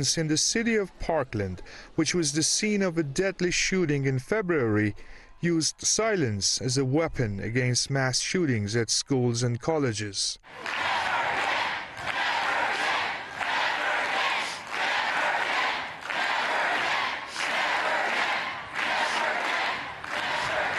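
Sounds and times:
speech: 0:00.0 - 0:11.0
large crowd at a protest rally against lax gun laws chanting in unison: 0:10.5 - 0:20.7.

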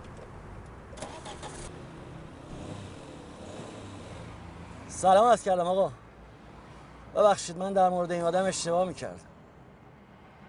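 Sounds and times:
car engine starting and running: 0:00.9 - 0:04.4
speech: 0:05.0 - 0:06.0, 0:07.2 - 0:09.3.

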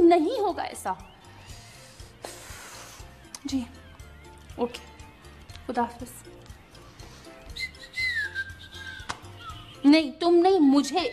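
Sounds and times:
speech: 0:00.1 - 0:01.2, 0:03.4 - 0:03.8, 0:04.6 - 0:04.9, 0:05.7 - 0:06.4, 0:09.8 - 0:11.1
person whistling a short wavering high tune: 0:07.4 - 0:09.7.

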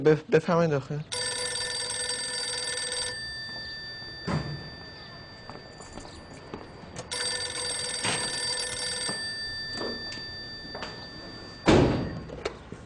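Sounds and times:
speech: 0:00.0 - 0:01.2
electronic telephone ringing: 0:01.1 - 0:12.5.

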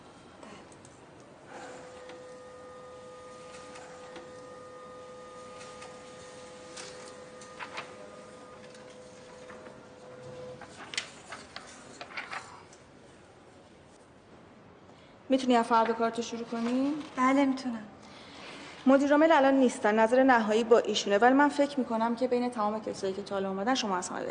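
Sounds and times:
office printer running: 0:01.4 - 0:12.3
speech: 0:15.3 - 0:17.9, 0:18.8 - 0:24.2.

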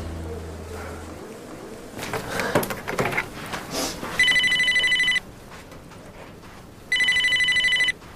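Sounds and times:
clattering handling noises: 0:02.0 - 0:03.7
telephone ringing with a steady electronic tone: 0:04.2 - 0:05.3, 0:06.9 - 0:08.0.

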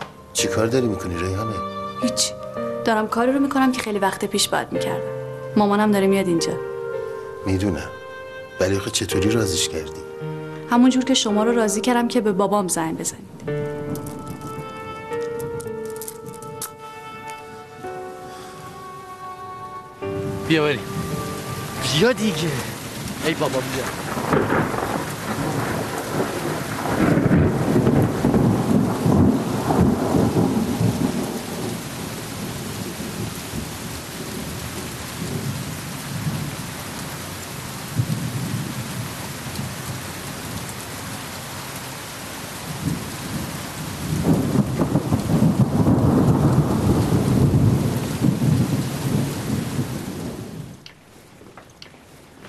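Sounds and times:
steady heavy rain: 0:00.0 - 0:52.4
speech: 0:00.4 - 0:06.7, 0:07.4 - 0:08.0, 0:08.6 - 0:10.1, 0:10.7 - 0:14.1, 0:20.5 - 0:21.0, 0:21.9 - 0:24.2
deep rolls of thunder: 0:20.2 - 0:36.7, 0:42.7 - 0:51.5.

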